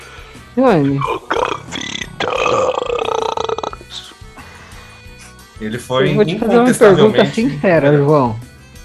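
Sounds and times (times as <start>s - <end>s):
speech: 0.6s - 1.2s, 5.6s - 8.4s
long loud drawn-out burp with gurgling tail: 0.9s - 4.0s.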